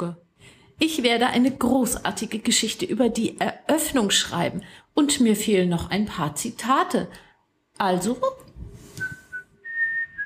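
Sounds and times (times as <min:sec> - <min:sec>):
speech: 0:00.0 - 0:00.2, 0:00.8 - 0:08.4
whistled notes: 0:09.0 - 0:10.2.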